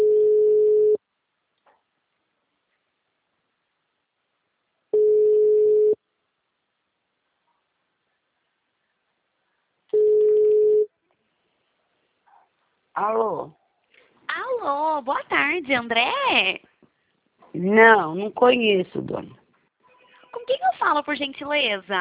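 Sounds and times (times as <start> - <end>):
telephone ringback tone while a call connects: 0.0 - 1.0, 5.0 - 6.0, 9.9 - 10.9
speech: 13.0 - 13.6, 14.6 - 16.7, 17.5 - 19.4, 20.3 - 21.9.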